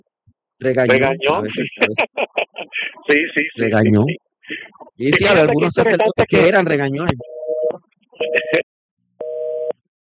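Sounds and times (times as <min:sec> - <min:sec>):
speech: 0:00.6 - 0:02.4, 0:03.1 - 0:04.2, 0:05.0 - 0:07.3, 0:08.3 - 0:08.6
laughter: 0:00.9 - 0:06.6, 0:08.2 - 0:08.6
telephone line beeps after a dropped call: 0:07.2 - 0:08.6, 0:09.2 - 0:09.8.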